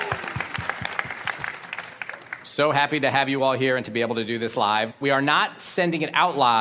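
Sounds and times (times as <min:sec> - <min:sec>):
live conference audience clapping: 0:00.0 - 0:02.7
speech: 0:02.6 - 0:06.5.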